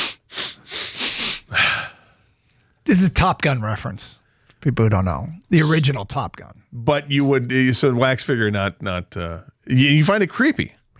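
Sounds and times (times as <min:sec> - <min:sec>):
voice imitating a double sniff: 0:00.0 - 0:02.0
speech: 0:02.9 - 0:10.8.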